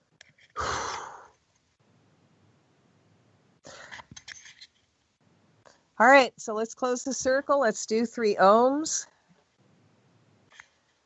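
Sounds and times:
deep breath drawn in and released during a group meditation circle: 0.6 - 1.4
speech: 6.0 - 9.1.

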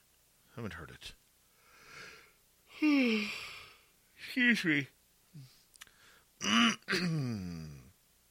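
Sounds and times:
speech: 0.6 - 1.2, 2.8 - 3.5, 4.3 - 5.5, 6.4 - 7.7
person clearing throat: 6.4 - 7.9.

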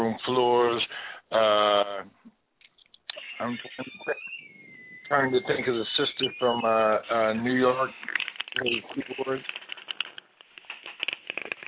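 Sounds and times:
voice over a thin phone-quality line: 0.0 - 2.0, 3.1 - 4.2, 5.0 - 9.4
speech: 0.1 - 1.6, 5.2 - 9.6
choppy crackles from a bad phone connection: 3.0 - 11.6.

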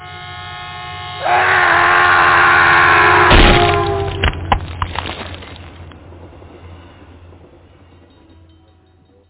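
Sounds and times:
train horn blaring: 0.0 - 4.2
rumbling noise: 3.3 - 8.3.

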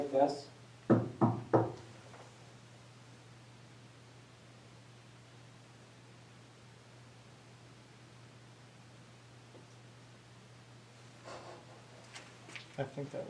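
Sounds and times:
speech: 0.0 - 0.6, 12.8 - 13.2
steady low hum and hiss: 0.0 - 13.2
sharp knocks: 0.9 - 1.8.

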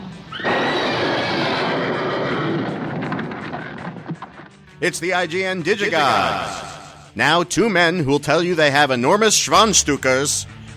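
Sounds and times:
spooked horses neighing: 0.2 - 4.5, 5.7 - 7.1
speech: 4.8 - 10.7.

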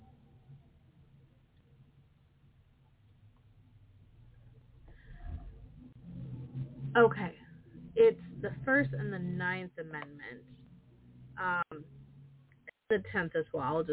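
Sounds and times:
road traffic rumble: 3.9 - 12.6
vehicle passing: 4.2 - 12.7
speech: 7.0 - 7.4, 8.4 - 10.6, 11.4 - 12.0, 12.9 - 13.9.

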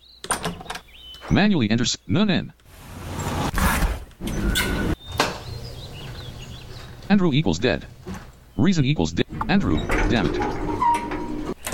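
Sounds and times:
speech: 1.3 - 2.6, 7.1 - 10.6
mechanical door sliding open with whoosh and hiss: 2.7 - 5.2, 9.3 - 11.7.

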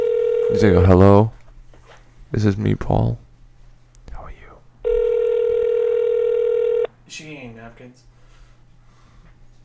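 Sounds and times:
electronic telephone ringing tone: 0.0 - 0.9, 4.8 - 6.9
speech: 0.5 - 1.4, 2.3 - 3.2, 7.1 - 8.1.

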